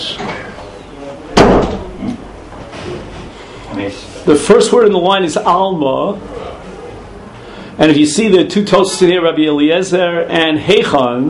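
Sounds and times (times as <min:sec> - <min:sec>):
faint room noise: 0:00.0 - 0:11.2
door shutting with a solid thud: 0:01.3 - 0:02.0
speech: 0:03.8 - 0:06.5, 0:07.8 - 0:11.2.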